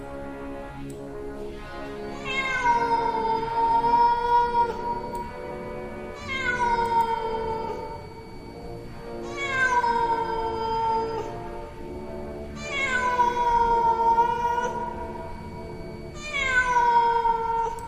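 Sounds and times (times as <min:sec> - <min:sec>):
cat leaping from tall grass meowing: 0:02.2 - 0:04.8, 0:06.2 - 0:07.9, 0:09.2 - 0:11.3, 0:12.6 - 0:14.9, 0:16.2 - 0:17.8.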